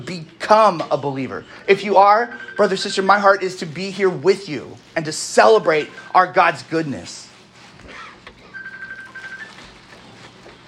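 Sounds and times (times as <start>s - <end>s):
speech: 0.0s - 7.3s
phone electronic ringtone chirping in a large room: 1.8s - 3.1s, 8.5s - 9.6s.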